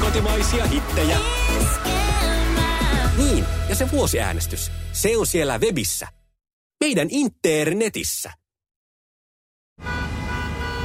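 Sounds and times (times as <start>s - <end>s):
speech: 0.1s - 1.9s, 3.2s - 6.2s, 6.8s - 8.4s
car horns blaring in a morning rush-hour traffic jam: 9.8s - 10.8s.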